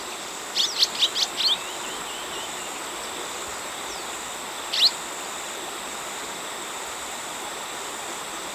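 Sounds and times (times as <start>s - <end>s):
Southern rough-winged swallow twittering in Ecuador: 0.0s - 3.2s, 3.8s - 5.0s
steady high hum: 0.0s - 8.5s.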